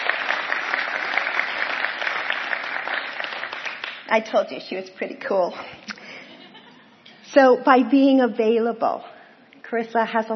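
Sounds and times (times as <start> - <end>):
audience applauding a woman: 0.0 - 4.3
speech: 4.1 - 5.8, 7.3 - 9.1, 9.7 - 10.3
laughter: 6.0 - 7.0.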